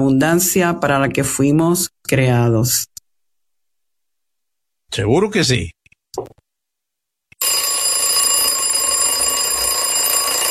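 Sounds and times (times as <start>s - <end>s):
speech: 0.0s - 2.9s, 4.9s - 6.4s
alarm clock ringing with a rattling metallic bell: 7.4s - 10.4s.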